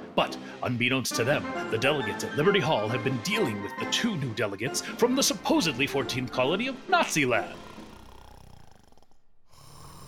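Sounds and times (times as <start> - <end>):
speech: 0.2 - 7.7
several people snoring while asleep from sleeping powder: 7.2 - 10.0.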